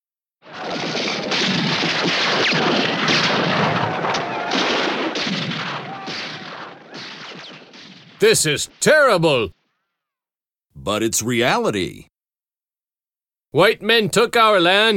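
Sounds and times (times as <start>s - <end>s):
booming blasts from a Western film on television: 0.4s - 9.4s
gunshots from a Western film on television: 0.4s - 9.4s
speech: 8.2s - 9.6s, 10.8s - 12.1s, 13.5s - 14.9s.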